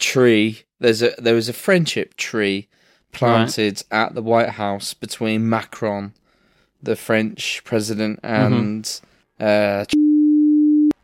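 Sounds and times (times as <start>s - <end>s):
speech: 0.1s - 6.2s, 6.8s - 10.0s
censor beep: 9.9s - 11.0s.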